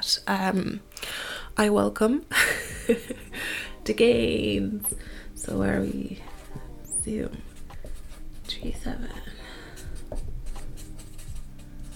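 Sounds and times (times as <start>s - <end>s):
speech: 0.2s - 0.9s, 1.6s - 6.3s, 7.1s - 7.5s, 8.5s - 9.4s
pen scratching on paper while writing: 5.5s - 11.9s.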